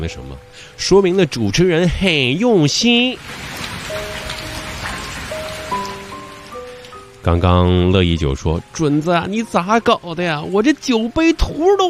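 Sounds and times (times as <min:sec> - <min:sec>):
speech: 0:00.0 - 0:03.6, 0:07.2 - 0:11.8
continuous patter of rain on a surface: 0:00.0 - 0:11.8.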